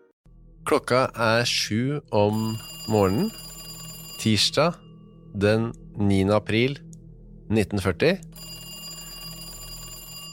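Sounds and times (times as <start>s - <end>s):
speech: 0.7s - 3.4s, 4.2s - 6.8s, 7.5s - 8.5s
telephone bell ringing in a home in Lillehammer Norway: 2.3s - 5.0s, 8.4s - 10.3s.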